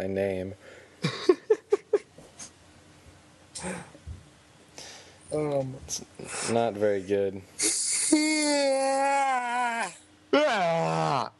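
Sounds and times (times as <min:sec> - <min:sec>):
speech: 0:00.0 - 0:01.2, 0:03.6 - 0:04.0, 0:05.3 - 0:11.3
person yawning exaggeratedly: 0:07.6 - 0:11.3.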